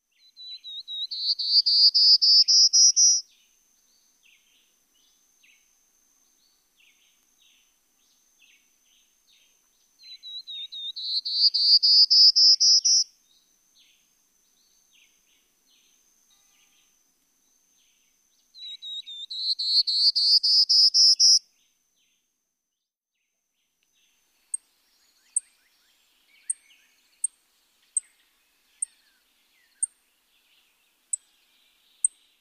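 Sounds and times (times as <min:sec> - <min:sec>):
Prairie Warbler: 0:00.1 - 0:05.6, 0:08.5 - 0:13.4, 0:18.4 - 0:21.4, 0:24.4 - 0:32.3.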